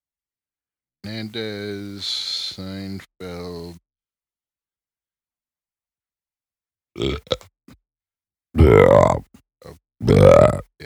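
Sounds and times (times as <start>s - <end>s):
speech: 1.1s - 3.8s, 7.0s - 7.5s, 8.6s - 10.8s
person burping: 7.0s - 7.5s, 8.6s - 9.3s, 10.0s - 10.8s.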